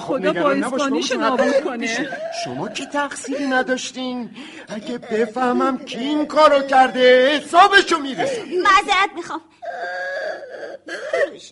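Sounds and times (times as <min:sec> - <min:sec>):
speech: 0:00.0 - 0:10.0, 0:10.9 - 0:11.4
person crying in wavering wails: 0:01.2 - 0:04.1, 0:04.7 - 0:07.4, 0:09.6 - 0:11.4.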